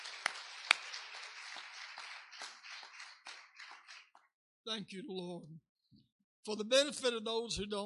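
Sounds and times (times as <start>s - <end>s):
crowd applauding in praise: 0.0s - 4.3s
speech: 4.7s - 5.7s, 6.4s - 7.8s.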